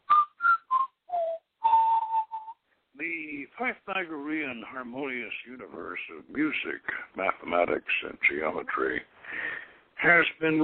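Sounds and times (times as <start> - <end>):
whistling a short tune in six clear notes: 0.0 - 2.6
speech: 3.6 - 10.6.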